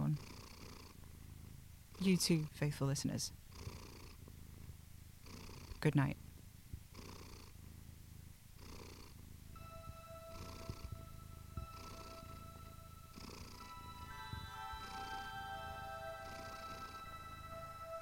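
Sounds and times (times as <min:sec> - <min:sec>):
cat purring: 0:00.0 - 0:09.6, 0:10.3 - 0:13.9, 0:16.1 - 0:18.0
speech: 0:02.0 - 0:03.8, 0:05.8 - 0:06.2
soft sustained tones: 0:09.6 - 0:18.0.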